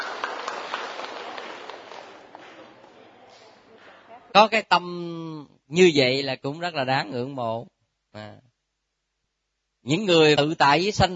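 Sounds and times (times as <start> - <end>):
audience clapping: 0.0 - 4.2
speech: 4.4 - 8.5, 9.8 - 11.1.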